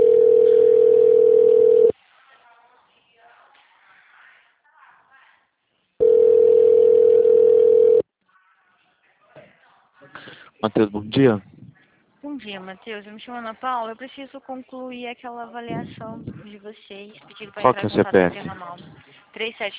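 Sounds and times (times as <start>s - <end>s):
telephone call connecting tone beeps: 0.0s - 1.9s, 6.0s - 8.0s
speech: 10.6s - 11.5s, 12.4s - 19.7s.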